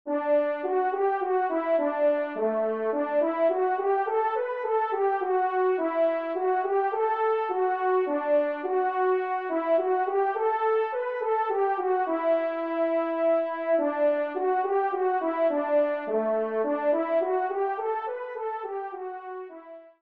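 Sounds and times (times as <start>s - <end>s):
minuet in C major: 0.1s - 19.9s.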